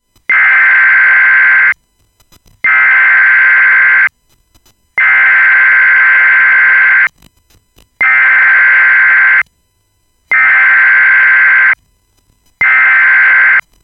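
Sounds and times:
tornado warning siren: 0.3 - 1.7, 2.7 - 4.1, 5.0 - 7.1, 8.0 - 9.4, 10.3 - 11.8, 12.6 - 13.6.

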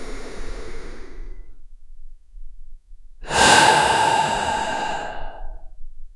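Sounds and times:
slow exhale through nose: 3.3 - 5.6.

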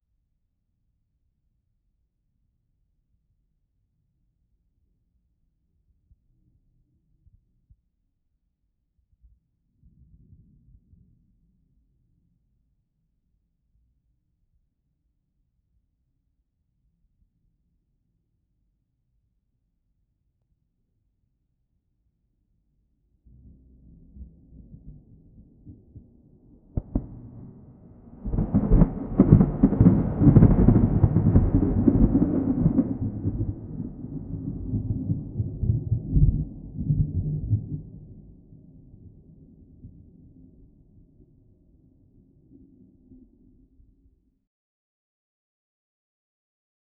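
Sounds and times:
thunder in an open field: 23.4 - 38.3.

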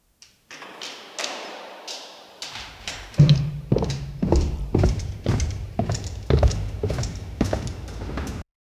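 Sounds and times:
hurried footsteps: 2.6 - 8.4.

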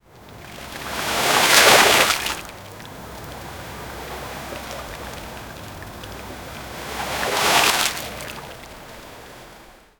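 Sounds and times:
light breeze: 0.0 - 9.9
water splash from a fishing cast: 0.8 - 2.5, 6.6 - 8.7.

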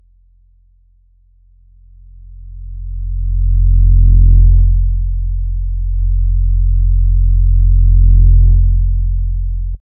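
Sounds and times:
bass intro: 2.2 - 9.8.

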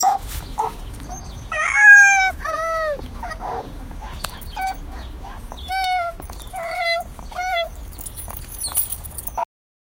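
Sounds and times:
poodle whining while playing with a cat: 1.1 - 3.7, 4.3 - 9.4
cat meowing while playing with a poodle: 1.5 - 3.0, 5.6 - 7.8.

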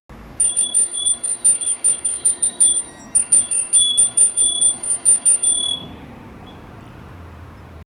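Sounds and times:
tiny bicycle pedaling in a neighborhood: 0.4 - 5.8.

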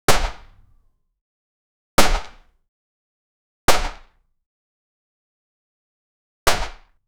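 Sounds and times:
bow shot: 0.1 - 0.8, 6.5 - 6.9.

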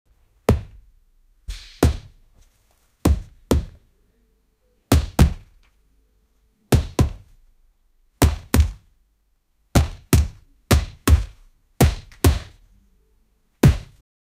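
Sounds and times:
punching in a fight: 0.5 - 0.8, 1.5 - 2.2, 3.0 - 3.8, 4.9 - 5.6, 6.7 - 7.3, 8.2 - 8.9, 9.8 - 12.6, 13.6 - 14.0.

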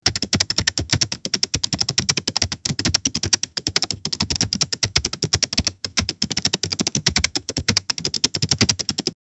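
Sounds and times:
computer keyboard typing: 0.0 - 9.2.

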